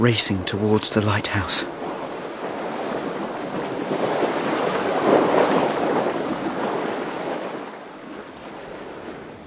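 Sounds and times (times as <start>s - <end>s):
speech: 0.0s - 1.8s
surging sea waves while sailing: 0.0s - 9.4s
wind rushing while sailing: 0.0s - 9.4s.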